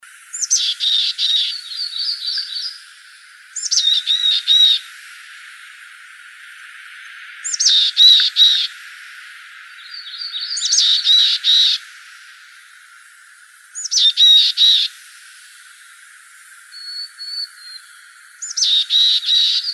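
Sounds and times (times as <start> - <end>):
Mountain Chickadee calls: 0.3 - 2.9, 3.5 - 4.8, 6.4 - 11.8, 13.8 - 15.0, 16.7 - 19.7.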